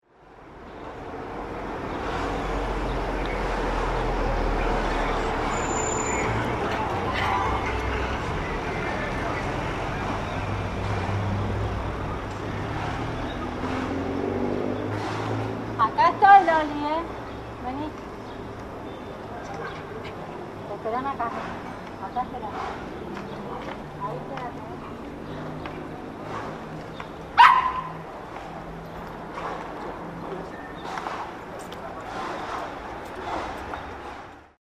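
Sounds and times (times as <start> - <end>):
street ambience in Rosario: 0.0 - 34.6.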